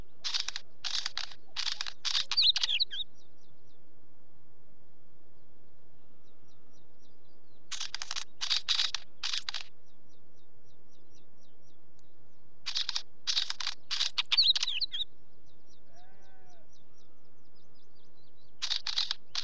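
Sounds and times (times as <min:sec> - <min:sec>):
Northern Wheatear singing: 0:00.0 - 0:03.9, 0:05.2 - 0:19.4.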